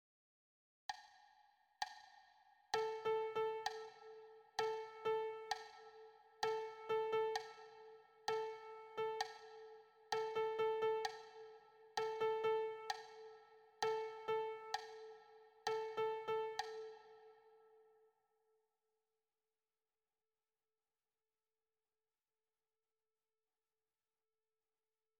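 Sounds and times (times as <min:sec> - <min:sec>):
simple rhythmic patterns: 0:02.8 - 0:17.8.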